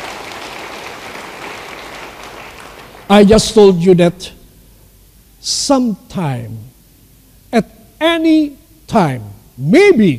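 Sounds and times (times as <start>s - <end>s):
large crowd applauding: 0.0s - 3.1s
speech: 3.1s - 4.4s, 5.4s - 6.7s, 7.5s - 10.1s.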